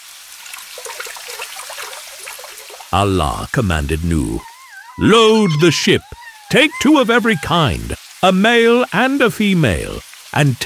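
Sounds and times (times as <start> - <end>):
water bubbling up from the ground through a simple clay oven: 0.4 - 8.0
speech: 2.9 - 10.6.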